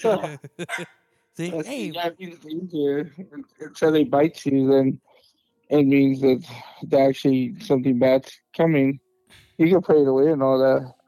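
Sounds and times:
laughter: 0.0s - 2.0s
speech: 0.0s - 5.1s, 5.7s - 11.0s
dog barking: 0.7s - 1.0s.

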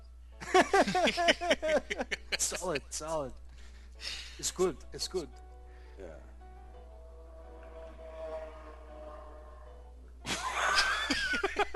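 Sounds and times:
laughter: 0.4s - 2.9s, 10.3s - 11.7s
speech: 0.6s - 3.4s, 4.0s - 5.4s, 6.0s - 6.3s, 11.1s - 11.7s
motorcycle passing by: 6.6s - 10.0s.

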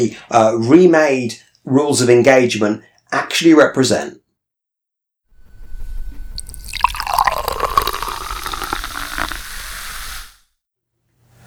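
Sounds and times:
speech: 0.0s - 4.2s
port pouring into a glass: 5.4s - 10.4s.

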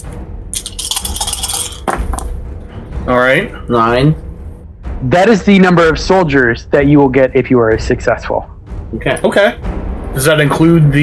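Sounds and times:
small dice rattling and clattering across a hard surface: 0.6s - 2.3s
speech: 3.1s - 4.2s, 5.0s - 11.0s.

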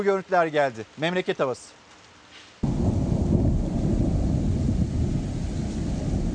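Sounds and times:
speech: 0.0s - 1.8s
heavy rain hissing during a night-time downpour in Istanbul: 2.6s - 6.3s
thunder rumbling during a night-time downpour in Istanbul: 2.6s - 6.3s.

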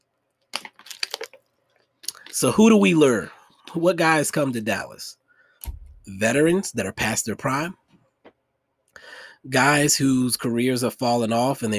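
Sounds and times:
person sipping and swallowing water: 2.0s - 2.4s
speech: 2.4s - 7.8s, 9.0s - 11.7s.

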